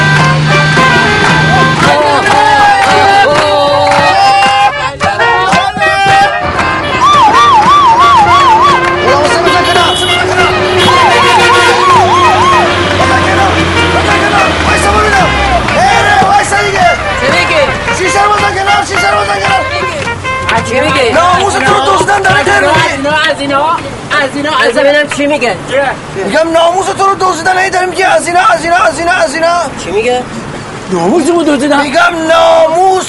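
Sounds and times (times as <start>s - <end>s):
ambulance siren wailing in rising and falling bursts: 0.0s - 20.0s
steady hum of street traffic: 0.0s - 33.0s
speech: 25.3s - 26.6s, 30.0s - 33.0s.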